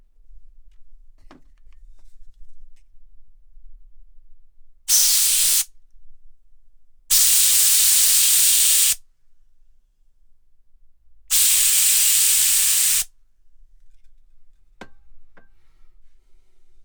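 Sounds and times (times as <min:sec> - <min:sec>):
air can spraying: 0:04.9 - 0:05.7, 0:07.1 - 0:09.0, 0:11.3 - 0:13.1.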